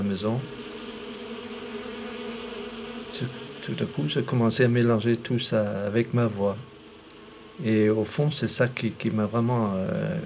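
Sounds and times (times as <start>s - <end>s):
many bees buzzing in a cherry tree: 0.0s - 10.2s
speech: 0.1s - 0.6s, 3.2s - 6.7s, 7.6s - 10.2s.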